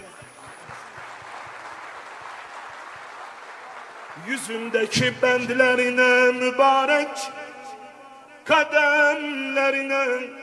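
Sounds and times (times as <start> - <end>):
audience applauding at a religious gathering: 0.0 - 5.7
speech: 4.2 - 7.4, 8.5 - 10.4.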